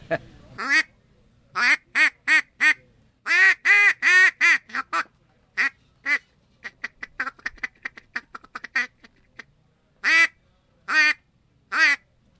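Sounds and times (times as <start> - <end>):
cheap duck call blown in raspy quacks: 0.6 - 0.9, 1.6 - 9.2, 10.0 - 10.3, 10.9 - 12.0.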